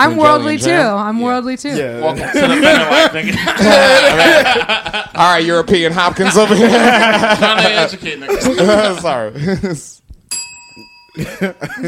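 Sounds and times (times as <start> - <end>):
speech: 0.0 - 10.0, 10.8 - 11.8
laughter: 2.0 - 10.0, 11.2 - 11.8
bell ringing: 10.3 - 11.8.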